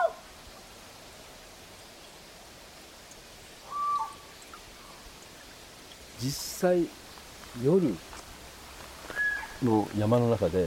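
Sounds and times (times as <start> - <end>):
steady hiss of nighttime mountain forest ambience under partly cloudy skies: 0.0 - 10.6
nocturnal Amami Ishikawa's frog whistle-like call: 3.6 - 4.2, 9.1 - 9.6
speech: 6.2 - 7.0, 7.6 - 8.1, 9.6 - 10.6.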